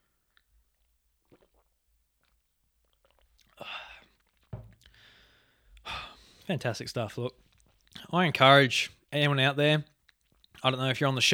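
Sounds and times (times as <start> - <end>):
slurping sip of water: 0.8 - 6.5
gulp of water: 1.2 - 6.5
breathy exhale: 4.9 - 6.5
speech: 6.5 - 7.5, 8.1 - 9.9, 10.6 - 11.3.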